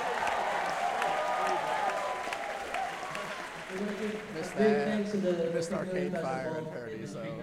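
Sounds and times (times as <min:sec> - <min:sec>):
large audience applauding: 0:00.0 - 0:05.5
speech: 0:04.4 - 0:07.4.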